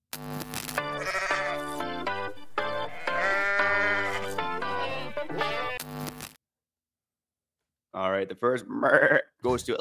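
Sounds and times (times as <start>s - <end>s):
goat bleating: 0.9s - 1.8s, 2.7s - 5.8s
speech: 8.2s - 9.8s.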